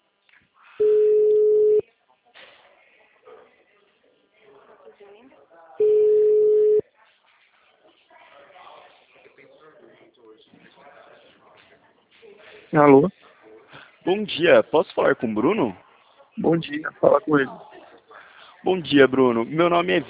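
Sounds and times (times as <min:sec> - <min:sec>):
faint noise on a telephone line: 0:00.0 - 0:20.0
telephone ringback tone on a line as a call rings out: 0:00.8 - 0:01.8, 0:05.8 - 0:06.8
speech: 0:12.7 - 0:13.2, 0:14.1 - 0:15.8, 0:16.4 - 0:17.7, 0:18.6 - 0:20.0.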